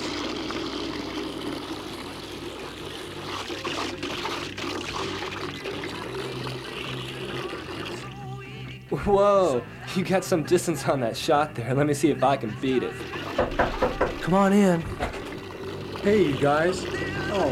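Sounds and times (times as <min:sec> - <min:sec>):
steady stream of liquid pouring and splashing while watering plants: 0:00.0 - 0:08.4, 0:12.6 - 0:17.4
speech: 0:09.0 - 0:13.6, 0:14.3 - 0:15.0, 0:16.0 - 0:17.4.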